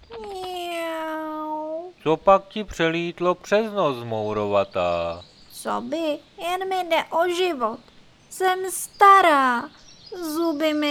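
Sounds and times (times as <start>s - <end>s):
cat meowing: 0.0s - 2.0s
speech: 2.0s - 10.8s.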